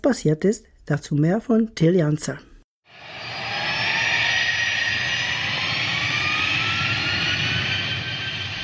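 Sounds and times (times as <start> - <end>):
speech: 0.0 - 2.5
Boeing 737-800 jet airliner taking off on the Greek island of Samos: 2.9 - 8.6.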